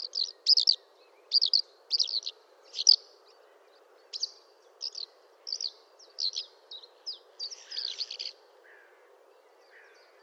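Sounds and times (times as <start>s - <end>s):
Eurasian skylark song in short bursts of high chirps and trills: 0.0s - 3.0s, 4.1s - 8.4s
low background hiss: 0.0s - 10.2s.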